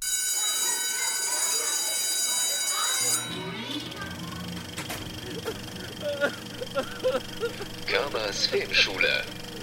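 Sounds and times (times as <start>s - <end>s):
podcast segment jingle with bright shrill sustained tones: 0.0s - 3.8s
laughter: 4.9s - 8.1s
speech: 8.3s - 9.4s.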